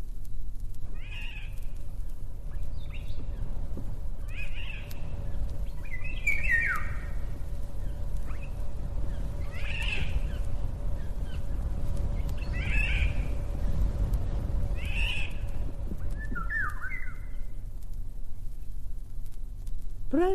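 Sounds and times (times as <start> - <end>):
low rumble: 0.0 - 20.3
Eurasian golden oriole calling outdoors: 0.9 - 1.6, 4.2 - 11.6, 12.2 - 13.4, 14.7 - 17.5.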